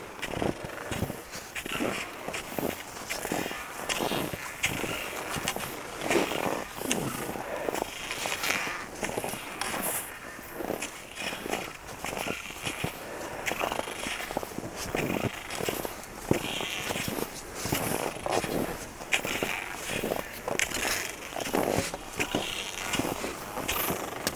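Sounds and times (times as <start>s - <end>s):
cross-country skis and poles scraping and crunching on very cold snow: 0.1s - 24.3s.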